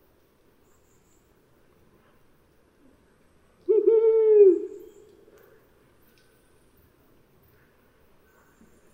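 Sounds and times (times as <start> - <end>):
brown wood owl giving a deep hoot: 3.7 - 5.0.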